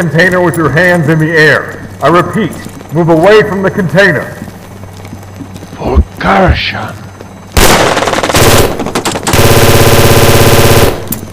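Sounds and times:
speech: 0.0s - 4.5s, 6.2s - 7.0s
machine gun fire in rapid sustained bursts at a harbor among cargo containers: 7.6s - 11.3s.

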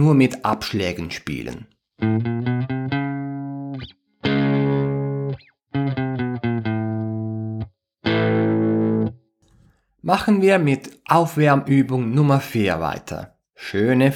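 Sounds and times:
speech: 0.0s - 2.4s, 10.1s - 14.1s
distorted electric guitar alternating single notes and power chords: 2.0s - 9.2s.

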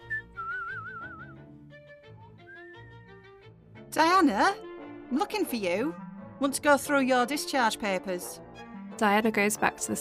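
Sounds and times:
person whistling a short wavering tune while walking off: 0.0s - 1.4s, 2.4s - 3.2s
speech: 3.9s - 8.4s, 9.0s - 9.9s.

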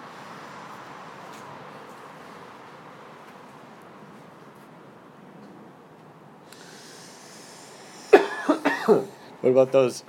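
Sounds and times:
large inhale: 6.5s - 8.3s
harsh raspy coughing: 8.0s - 9.2s
speech: 8.9s - 10.0s.

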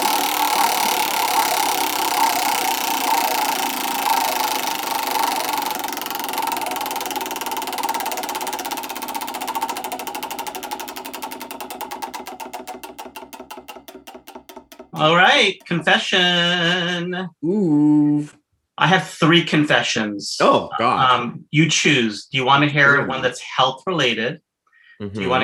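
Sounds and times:
prize wheel spinning with mechanical ticking and whirring: 0.0s - 16.0s
speech: 15.0s - 24.4s, 25.0s - 25.4s.

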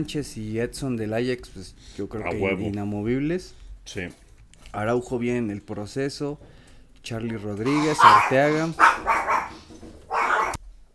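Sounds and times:
speech: 0.0s - 9.1s
dogs barking: 7.6s - 10.6s.

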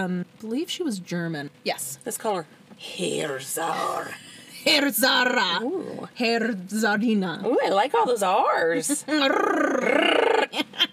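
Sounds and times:
speech: 0.0s - 10.6s
person imitating a chihuahua growl: 9.1s - 10.6s
breathy vocal bursts: 9.2s - 10.5s.

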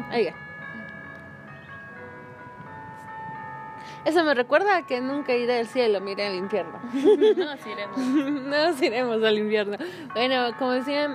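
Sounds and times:
bells ringing: 0.0s - 11.1s
speech: 0.1s - 0.4s, 4.0s - 11.1s
laughter: 6.9s - 8.7s.

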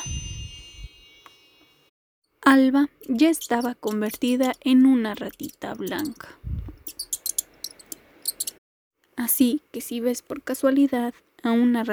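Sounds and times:
soft low rumble: 0.0s - 1.0s
magic wand chime sound effect: 0.0s - 1.9s
speech: 2.5s - 6.4s, 9.2s - 11.9s.

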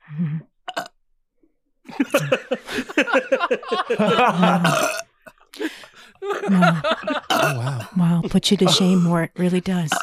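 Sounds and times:
loud gurgling burp: 0.7s - 0.9s, 4.4s - 5.1s, 7.3s - 8.0s
laughter: 1.9s - 4.9s, 5.6s - 7.7s
speech: 2.0s - 5.0s, 6.5s - 10.0s.

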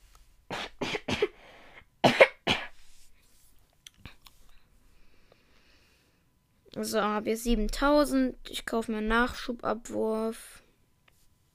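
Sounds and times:
harsh coughs: 0.5s - 1.4s, 2.0s - 2.8s
speech: 6.8s - 10.6s.

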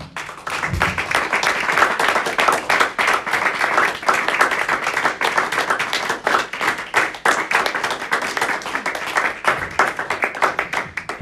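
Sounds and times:
crowd applauding: 0.0s - 11.2s.

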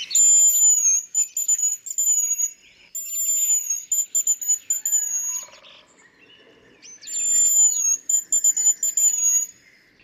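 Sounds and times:
whistle-like bird call: 0.1s - 5.6s, 7.1s - 9.6s.

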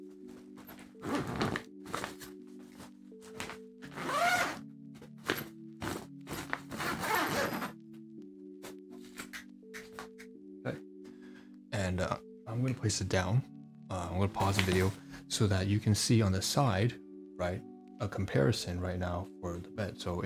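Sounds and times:
zipper on a mattress bag: 0.7s - 2.3s, 3.8s - 4.6s, 5.2s - 7.8s
speech: 11.9s - 20.2s.

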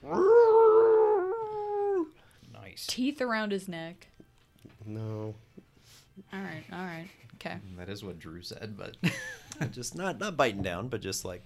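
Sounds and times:
person imitating a dog's howl: 0.0s - 2.1s
speech: 2.8s - 4.2s, 4.8s - 5.5s, 6.2s - 11.4s.

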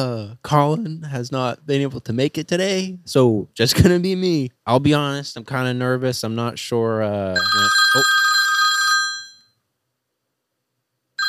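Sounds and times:
speech: 0.0s - 8.4s
telephone bell ringing: 7.4s - 9.6s.

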